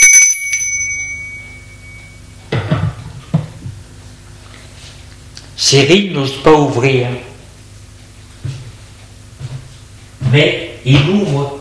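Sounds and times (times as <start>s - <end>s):
doorbell ringing at a home: 0.0s - 2.4s
speech: 5.7s - 7.3s, 10.4s - 11.5s.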